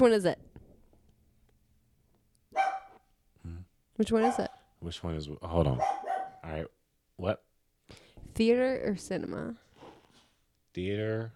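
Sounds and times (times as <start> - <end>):
speech: 0.0 - 0.4, 4.0 - 9.6, 10.8 - 11.3
dog barking: 2.5 - 3.1, 4.1 - 4.7, 5.7 - 6.5.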